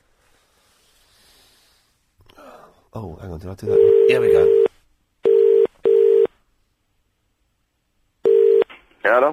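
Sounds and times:
speech: 2.9s - 4.7s
telephone dialing tones for a call back: 5.3s - 6.3s, 8.3s - 8.6s.

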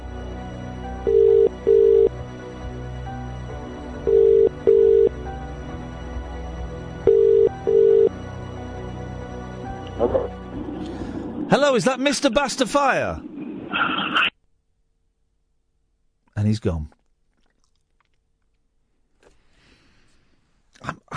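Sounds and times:
telephone ringing after a call is dialled: 1.0s - 2.1s, 4.1s - 5.2s, 7.0s - 8.1s
speech: 11.6s - 13.3s, 16.4s - 17.0s.

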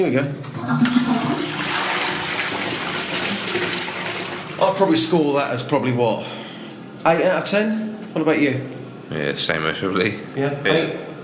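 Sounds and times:
speech: 0.0s - 1.5s, 4.6s - 6.4s, 7.0s - 11.1s
toilet flushing: 0.4s - 5.3s.

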